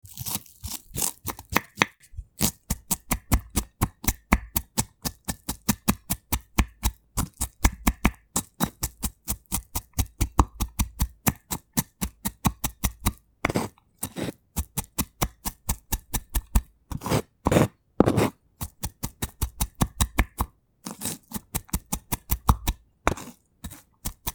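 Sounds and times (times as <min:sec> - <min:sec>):
chopping vegetables: 0:00.0 - 0:24.3.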